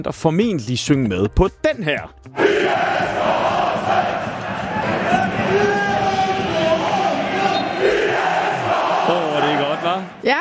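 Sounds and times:
speech: 0.0s - 4.2s
stadium crowd of football spectators singing a chant: 2.3s - 10.3s.

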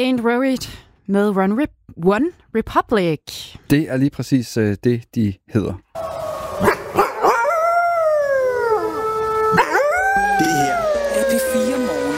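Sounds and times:
speech: 0.0s - 6.7s
wolves yipping: 6.0s - 8.8s, 9.5s - 12.1s
wolves howling in a chorus: 6.0s - 12.1s.

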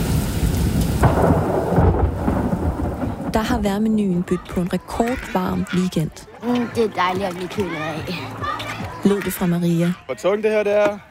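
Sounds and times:
thunder crack and rumble during a storm: 0.0s - 4.6s
heavy rain: 0.0s - 4.7s
speech: 3.4s - 11.0s.

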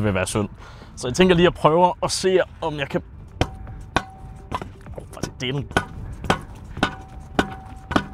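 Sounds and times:
speech: 0.0s - 3.2s, 5.4s - 5.9s
hammer banging on a metal object: 3.4s - 8.1s.

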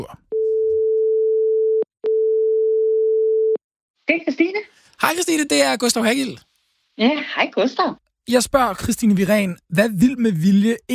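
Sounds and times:
speech: 0.0s - 0.2s, 5.1s - 10.9s
steady single-pitched telephone ringing tone: 0.3s - 3.6s.

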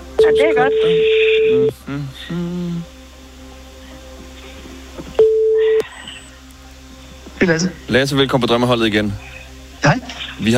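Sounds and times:
faint hum: 0.0s - 10.5s
telephone ringing tone while placing call: 0.2s - 1.7s, 5.2s - 5.6s
brief electronic phone call beeps: 0.2s - 1.8s, 5.2s - 5.8s
speech: 0.2s - 2.6s, 7.4s - 9.3s, 10.4s - 10.5s.

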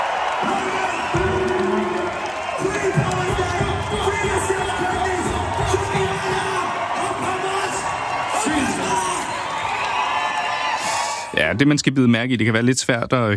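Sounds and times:
crowd chanting at a concert: 0.0s - 9.7s
crowd cheering and shouting at a concert: 0.0s - 11.8s
speech: 11.5s - 13.3s.

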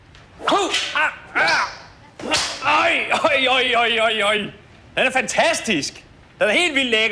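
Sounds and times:
whip cracking: 0.4s - 2.7s
high wavering vocal cries: 0.4s - 3.2s
speech: 0.7s - 1.2s, 3.2s - 7.1s.

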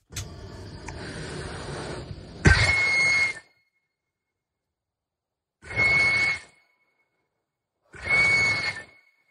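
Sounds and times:
harsh breathy piercing whistle blasts from a human-scaring device: 2.4s - 3.9s, 5.6s - 7.2s, 7.9s - 9.2s.

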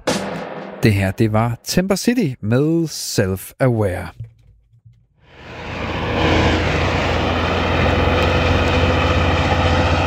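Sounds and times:
speech: 0.8s - 4.3s
broadband road noise: 5.3s - 10.0s
heavy gravel-laden truck engine roaring: 5.3s - 10.0s.

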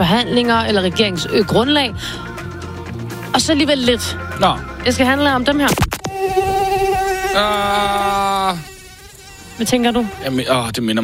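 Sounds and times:
speech: 0.1s - 2.3s, 3.3s - 6.3s, 7.4s - 8.7s, 9.6s - 11.0s
mosquito buzzing: 4.2s - 11.0s.

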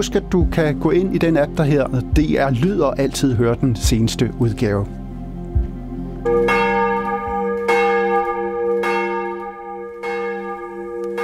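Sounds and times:
speech: 0.0s - 5.0s
church bells ringing for morning service at a church in Copenhagen: 6.2s - 11.2s.

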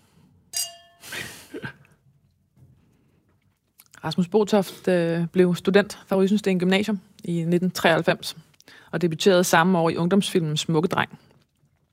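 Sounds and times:
glasses clinking in a toast: 0.5s - 1.3s
speech: 4.0s - 11.3s.

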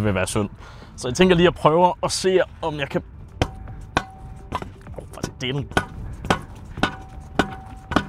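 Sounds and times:
speech: 0.0s - 3.2s, 5.4s - 5.9s
hammer striking something solid: 3.4s - 8.0s.

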